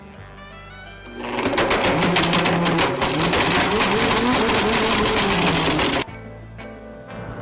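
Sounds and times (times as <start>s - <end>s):
blender grinding an iPhone on its smoothie button: 1.1s - 6.0s.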